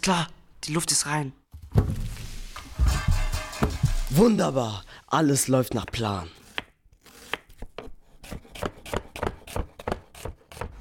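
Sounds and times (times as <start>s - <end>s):
speech: 0.0s - 2.0s, 4.1s - 6.4s
onion chopped with a knife on a board: 5.8s - 10.7s.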